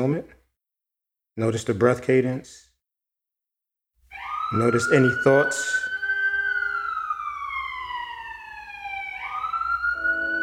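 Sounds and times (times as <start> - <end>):
speech: 0.0 - 0.4, 1.4 - 2.7, 4.5 - 5.9
emergency vehicle siren passing: 4.1 - 10.4.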